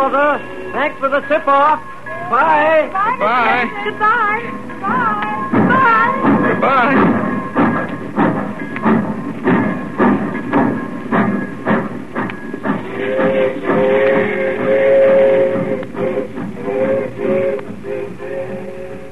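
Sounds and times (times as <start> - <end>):
speech: 0.0 - 8.0
train chugging and clanking pulling out of a station: 0.0 - 19.1
train whistle-like tone: 12.8 - 19.1.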